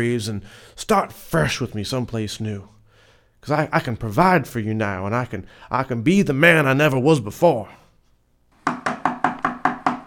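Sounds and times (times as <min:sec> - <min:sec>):
speech: 0:00.0 - 0:02.8, 0:03.4 - 0:07.8
firm knocking on a door: 0:08.6 - 0:10.0.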